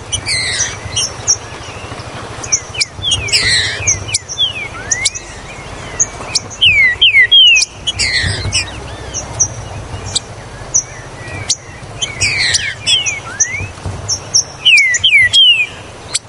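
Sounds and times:
Green-winged saltator singing strong falling whistles: 0:00.0 - 0:16.2.

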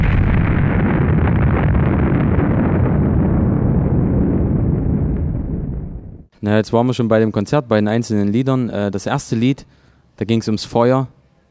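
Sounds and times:
explosion sound effect used in a live music show: 0:00.0 - 0:06.3
speech: 0:06.4 - 0:11.2.

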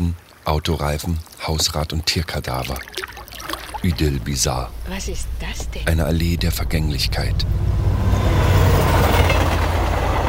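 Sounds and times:
speech: 0:00.5 - 0:03.1, 0:03.8 - 0:07.7
regional train on the Neisse valley line crossing a river between Zittau and Görlitz: 0:05.4 - 0:10.2.

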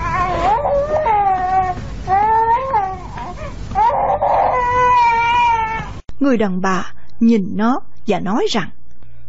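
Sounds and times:
baby held in a woman's arms crying loudly: 0:00.0 - 0:05.9
speech: 0:06.3 - 0:08.8.

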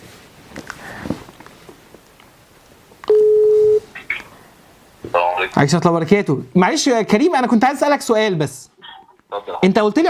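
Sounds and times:
telephone key beeps while dialing: 0:03.1 - 0:03.8
steady telephone tone while calling someone: 0:03.1 - 0:03.9
speech: 0:05.4 - 0:08.7, 0:09.3 - 0:10.0.

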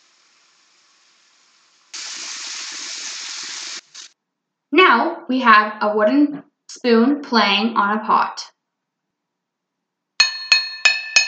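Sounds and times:
tap water running from a faucet: 0:00.0 - 0:04.2
speech: 0:04.9 - 0:08.5.

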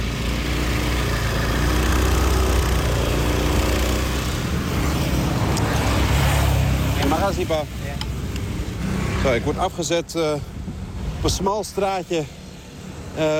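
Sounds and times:
motor scooter engine carrying a passenger through city streets of South Jakarta: 0:00.0 - 0:09.5
road noise: 0:00.0 - 0:13.3
speech: 0:07.4 - 0:07.8, 0:09.2 - 0:12.4, 0:13.2 - 0:13.3.

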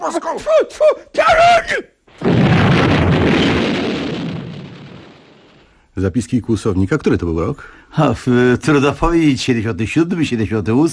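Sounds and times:
speech: 0:00.0 - 0:02.4, 0:06.0 - 0:10.9
thrown hand grenade exploding sound effect: 0:02.1 - 0:05.8.

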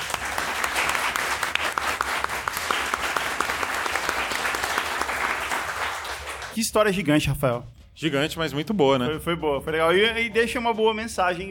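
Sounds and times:
crowd applauding: 0:00.0 - 0:06.9
speech: 0:06.6 - 0:11.4.

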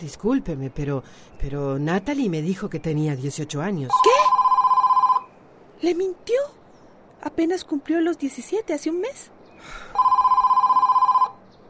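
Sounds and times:
speech: 0:00.0 - 0:04.4, 0:05.8 - 0:06.6, 0:07.2 - 0:10.1
telephone ringing with pulsing warbling tones: 0:03.9 - 0:05.3, 0:09.9 - 0:11.4.

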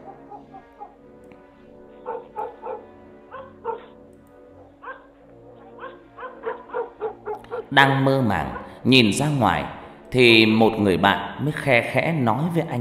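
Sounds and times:
dog barking at the end of a village lane on a cold night: 0:00.0 - 0:01.0, 0:01.8 - 0:07.8, 0:08.4 - 0:08.8
speech: 0:07.7 - 0:12.8.

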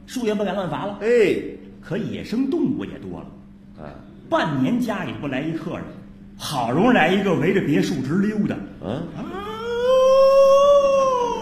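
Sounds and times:
speech: 0:00.1 - 0:09.4
wolf howling: 0:09.2 - 0:11.3.

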